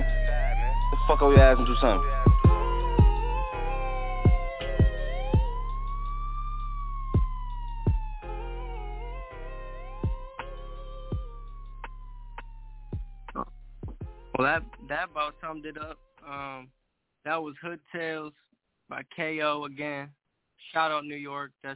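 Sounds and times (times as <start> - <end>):
police sirens wailing: 0.0 - 13.4, 14.3 - 15.9
low steady hum: 0.0 - 16.6
speech: 1.1 - 2.3, 14.4 - 21.7.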